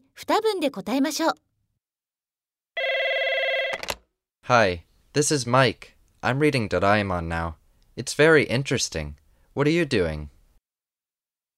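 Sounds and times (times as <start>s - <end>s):
speech: 0.3s - 1.5s, 4.5s - 10.4s
telephone ringing with a bright electronic tone: 2.8s - 4.0s.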